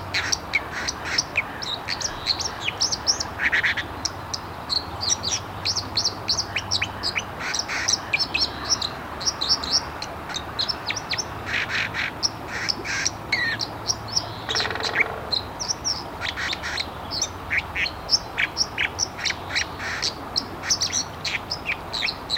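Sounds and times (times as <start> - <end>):
broad background noise: 0.0 - 22.3
White-throated Dipper twittering at Tyyrinvirta: 13.4 - 16.5.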